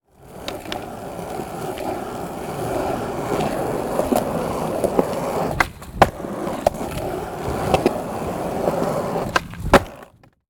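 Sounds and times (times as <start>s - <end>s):
skateboard rolling: 0.0s - 10.4s.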